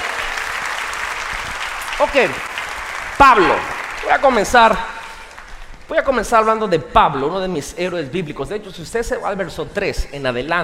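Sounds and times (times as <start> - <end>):
congregation applauding: 0.0 - 6.5
speech: 2.0 - 2.5, 3.2 - 5.0, 5.9 - 10.6.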